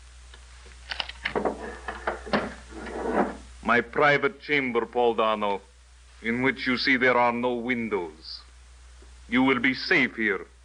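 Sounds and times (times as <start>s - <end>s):
faint steady hum: 0.0s - 10.6s
wooden door closing with clunks: 1.3s - 2.6s
speech: 3.7s - 8.4s, 9.3s - 10.5s.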